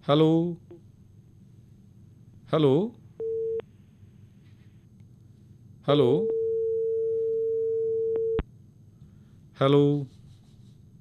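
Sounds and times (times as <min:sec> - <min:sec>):
speech: 0:00.0 - 0:00.6, 0:02.5 - 0:03.0, 0:05.8 - 0:06.4, 0:09.6 - 0:10.2
phone line beep after a dropped call: 0:03.2 - 0:03.6, 0:06.3 - 0:08.4.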